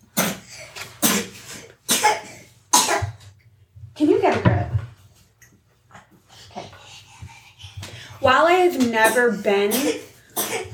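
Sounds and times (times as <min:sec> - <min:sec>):
toddler coughing: 0:01.0 - 0:03.2, 0:09.0 - 0:10.7
speech: 0:08.3 - 0:10.1.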